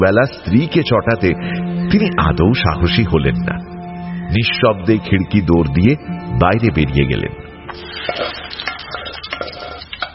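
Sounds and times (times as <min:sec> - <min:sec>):
speech: 0:00.0 - 0:03.6, 0:04.3 - 0:08.2
food stirred in a cooking pan: 0:07.8 - 0:10.1.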